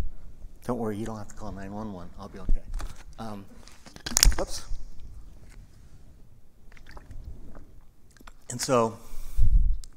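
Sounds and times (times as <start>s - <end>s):
speech: 0.7s - 3.7s, 4.4s - 4.7s, 8.5s - 9.1s
person drinking water with wet mouth sounds: 6.7s - 8.5s.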